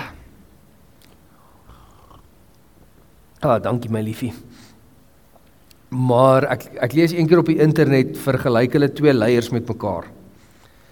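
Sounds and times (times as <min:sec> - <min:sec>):
person sipping tea from a cup with faint slurping: 0:01.0 - 0:03.1
speech: 0:03.4 - 0:04.7, 0:05.9 - 0:10.2.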